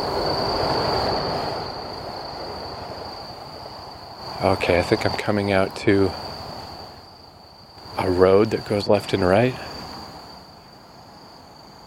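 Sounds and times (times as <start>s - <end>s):
train rolling past: 0.0s - 10.4s
speech: 4.4s - 6.3s, 8.0s - 9.7s.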